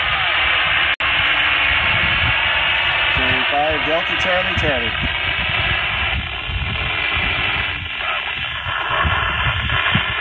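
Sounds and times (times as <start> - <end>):
radio receiver static from amateur satellite pass: 0.0 - 10.1
speech: 3.6 - 5.2.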